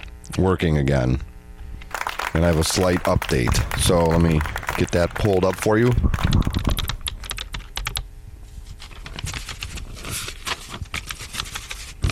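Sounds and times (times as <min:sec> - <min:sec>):
speech: 0:00.3 - 0:01.3, 0:02.3 - 0:06.8
typing on a computer keyboard: 0:06.2 - 0:08.0.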